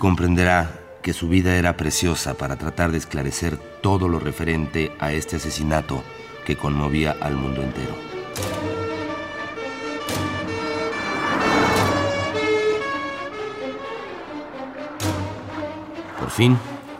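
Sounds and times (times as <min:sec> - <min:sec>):
speech: 0:00.0 - 0:08.7, 0:16.4 - 0:16.7
ambulance siren: 0:02.0 - 0:16.9
traffic rumble: 0:07.2 - 0:16.9.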